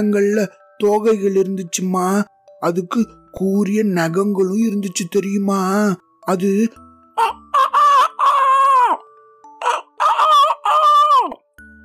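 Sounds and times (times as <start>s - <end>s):
speech: 0.0s - 7.4s
rooster crowing: 7.2s - 9.0s, 9.6s - 11.4s.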